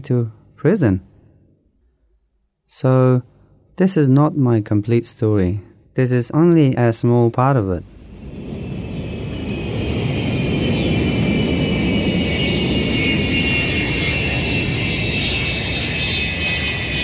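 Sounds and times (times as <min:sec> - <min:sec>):
speech: 0:00.0 - 0:01.1, 0:02.7 - 0:07.9
airplane landing with engine whine and deep rumbling: 0:07.7 - 0:17.0.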